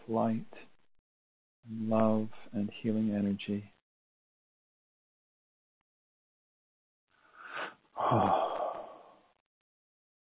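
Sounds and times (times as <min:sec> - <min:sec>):
speech: 0:00.1 - 0:00.7, 0:01.6 - 0:03.8, 0:08.0 - 0:08.5
slow deep breath with raspy wheeze: 0:07.2 - 0:09.4.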